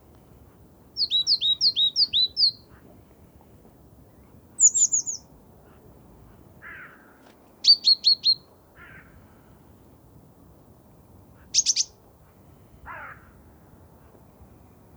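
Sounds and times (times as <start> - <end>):
great tit calls, Parus major: 0.9 - 2.9, 4.6 - 5.4, 6.6 - 9.2, 11.4 - 12.0.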